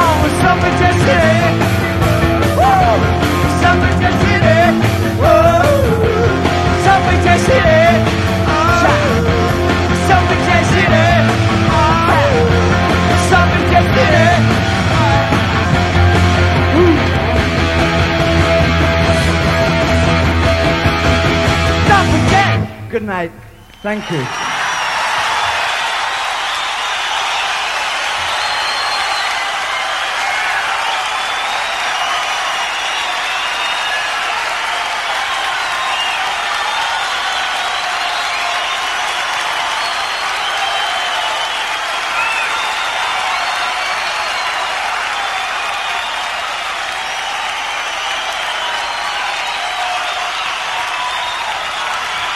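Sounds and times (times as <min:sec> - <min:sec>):
faint cheers of a concert crowd: 0:00.0 - 0:17.6, 0:23.5 - 0:52.3
large concert crowd clapping for an encore: 0:00.0 - 0:22.6, 0:23.6 - 0:52.3
speech: 0:23.8 - 0:24.5.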